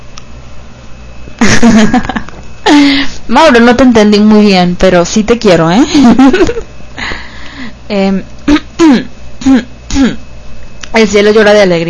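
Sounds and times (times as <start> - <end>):
speech: 1.6 - 2.2, 2.8 - 6.7, 7.9 - 10.2, 10.9 - 11.8
throat clearing and coughing: 8.5 - 10.2.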